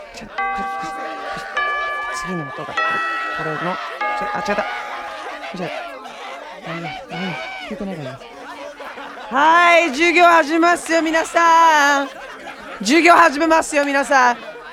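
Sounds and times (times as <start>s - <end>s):
people chattering and laughing: 0.0s - 14.7s
speech: 0.2s - 1.6s, 2.2s - 4.9s, 5.5s - 5.9s, 6.6s - 8.3s, 9.3s - 12.2s, 12.8s - 14.5s
broken school chime rung by hand: 0.4s - 7.4s.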